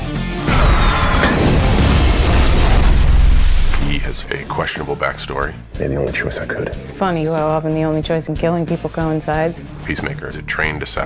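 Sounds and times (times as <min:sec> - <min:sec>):
explosion of a grenade tied to a Russian tank shell: 0:00.5 - 0:04.0
speech: 0:04.6 - 0:11.0.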